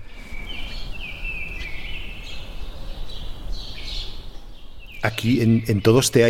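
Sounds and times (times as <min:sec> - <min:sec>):
birds singing outside an open window in Madrid: 0:00.0 - 0:06.2
speech: 0:05.0 - 0:06.2.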